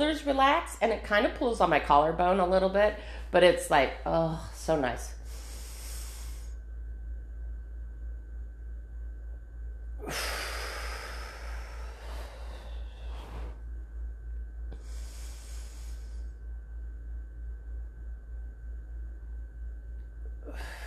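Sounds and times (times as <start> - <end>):
speech: 0.0 - 5.2, 10.0 - 10.4
steady low hum: 0.0 - 20.8
deep slow breaths from a breathing exercise: 5.1 - 7.0, 9.9 - 16.8, 20.2 - 20.8.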